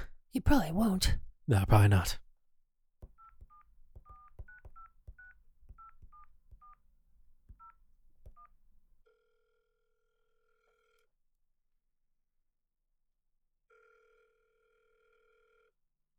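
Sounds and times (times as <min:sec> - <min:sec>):
speech: 0:00.4 - 0:02.2
touch-tone telephone keypad beeps: 0:03.2 - 0:06.8.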